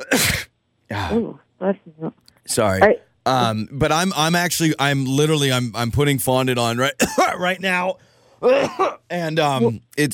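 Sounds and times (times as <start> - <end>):
person with allergies coughing while putting fondant on a cake: 0.0 - 1.2, 7.0 - 7.4, 8.4 - 9.1
speech: 0.1 - 10.1.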